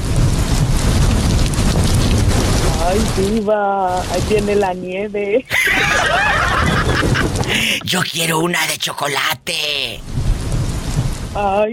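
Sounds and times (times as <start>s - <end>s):
deep continuous low rumble of thunder: 0.0s - 5.1s, 10.0s - 11.7s
heavy rain pouring down: 0.0s - 11.7s
speech: 2.9s - 10.2s, 11.4s - 11.7s
laughter: 5.5s - 8.0s.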